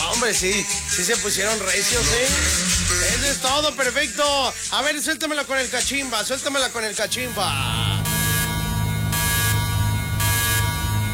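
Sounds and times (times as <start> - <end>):
speech: 0.2 - 8.0
loud harsh electronic alarm buzzer: 0.6 - 3.4, 7.2 - 11.1
droning low hum: 7.2 - 11.1.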